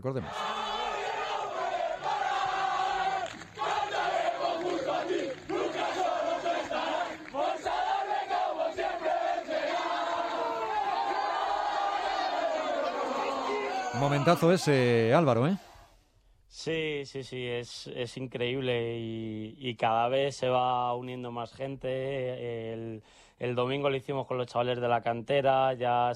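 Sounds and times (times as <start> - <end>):
speech: 0.0 - 0.6, 14.0 - 15.7, 16.6 - 26.1
football team cheering and chanting celebrating a comeback win: 0.2 - 15.0.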